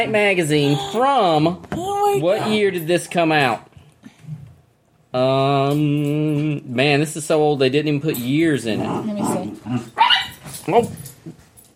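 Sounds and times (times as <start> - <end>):
speech: 0.0 - 3.7, 5.1 - 11.4
dog yelps during a scuffle: 10.0 - 10.4.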